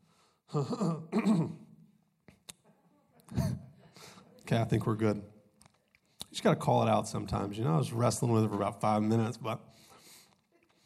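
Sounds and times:
speech: 0.5 - 1.5, 4.5 - 5.4, 6.4 - 9.8
person clearing throat: 0.5 - 1.7, 3.3 - 3.7.

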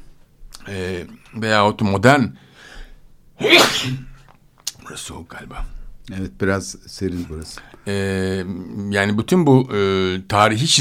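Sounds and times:
speech: 0.7 - 2.5, 3.4 - 4.1, 4.9 - 10.8
quiet inhale: 2.4 - 3.1
sharp loud sneeze: 3.4 - 4.2.

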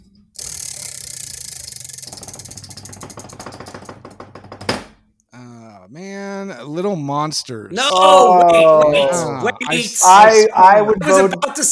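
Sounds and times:
online prize wheel spinning and clicking: 0.4 - 3.7
speech: 6.6 - 11.7
laughter: 7.8 - 11.7.

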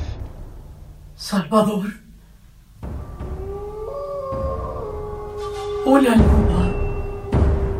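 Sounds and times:
speech: 1.2 - 2.0, 5.8 - 6.6
wolves howling: 2.8 - 7.7.

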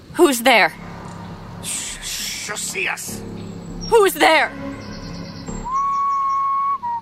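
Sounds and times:
speech: 0.2 - 0.8, 2.5 - 4.8
single whistle in the woods: 5.6 - 7.0.

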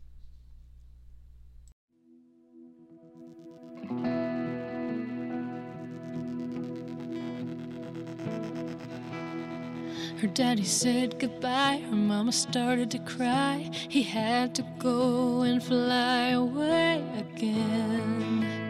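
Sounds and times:
brief low hum: 0.0 - 1.8, 2.7 - 12.0
sustained effects-laden instrumental tones: 2.2 - 12.7
duo's band playing instrumental song intro: 3.5 - 10.3
speech: 10.2 - 18.6.

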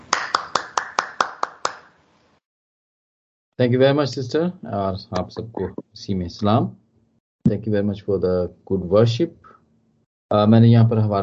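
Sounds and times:
audience applause welcoming a speaker at a worship service: 0.0 - 2.0
speech: 3.6 - 6.8, 7.4 - 9.6, 10.3 - 11.2.

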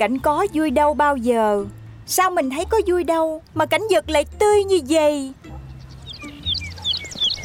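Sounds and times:
speech: 0.0 - 5.4
bird chirping loudly and shrilly: 5.4 - 7.4.

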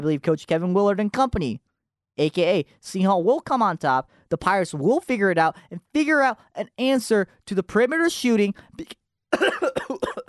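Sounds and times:
speech: 0.0 - 10.1
person coughing and choking on their own breath: 9.3 - 10.2.

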